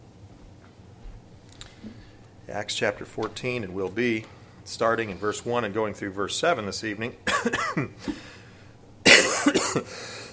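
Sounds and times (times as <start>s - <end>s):
speech: 2.5s - 8.3s
person coughing harshly: 7.3s - 8.4s, 9.0s - 10.3s.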